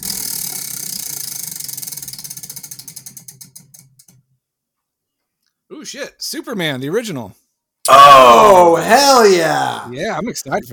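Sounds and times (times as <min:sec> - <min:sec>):
spinning wheel ratcheting: 0:00.0 - 0:04.2
speech: 0:05.7 - 0:10.7.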